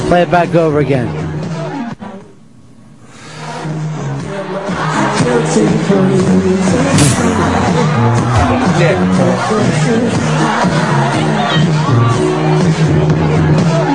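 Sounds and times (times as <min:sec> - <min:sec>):
speech: 0:00.1 - 0:01.3, 0:05.4 - 0:13.8
concert crowd din from a played-back video: 0:04.3 - 0:13.9.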